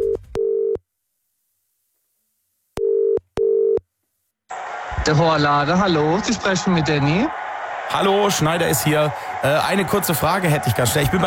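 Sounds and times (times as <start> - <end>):
telephone ring tone on an outgoing call to a hair salon: 2.8 - 3.8
speech: 5.1 - 11.2.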